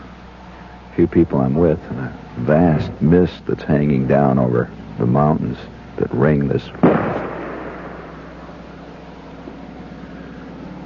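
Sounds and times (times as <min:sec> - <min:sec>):
speech: 0:01.0 - 0:07.1
big game rifle shot in a rainforest sighting in a telescopic sight: 0:06.8 - 0:08.6.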